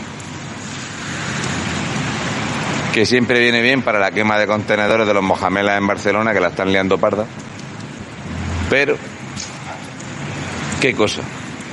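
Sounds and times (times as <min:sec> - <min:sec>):
light drizzle of fine rain: 0:00.0 - 0:11.7
speech: 0:03.0 - 0:07.5, 0:08.7 - 0:09.6, 0:10.8 - 0:11.4.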